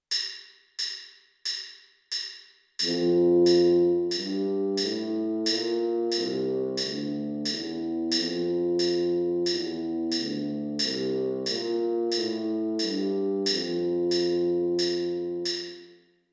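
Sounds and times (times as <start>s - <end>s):
tuba playing an F major scale: 2.8s - 15.9s.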